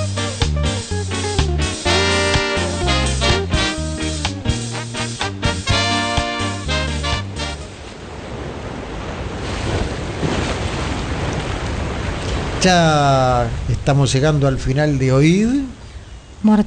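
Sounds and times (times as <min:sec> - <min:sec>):
tonal music-like notes: 0:00.0 - 0:07.7
ocean waves: 0:00.0 - 0:13.8
wind: 0:07.2 - 0:16.6
speech: 0:12.6 - 0:15.8, 0:16.4 - 0:16.6.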